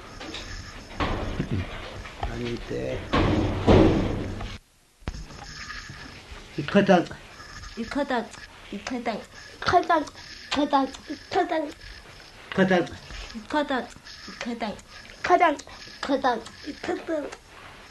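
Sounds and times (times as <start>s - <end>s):
door banging shut in the wind: 0.9s - 2.0s, 3.0s - 4.6s
people talking: 2.3s - 3.1s, 6.6s - 7.2s, 7.8s - 11.8s, 12.5s - 17.9s.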